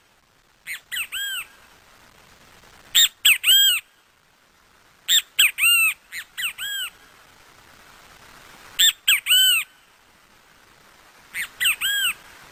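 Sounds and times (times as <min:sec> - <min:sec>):
great kiskadee song at an open-air classroom in Parque Avellaneda: 0:00.6 - 0:01.6, 0:02.9 - 0:04.0, 0:05.1 - 0:07.1, 0:08.8 - 0:10.0, 0:11.3 - 0:12.4.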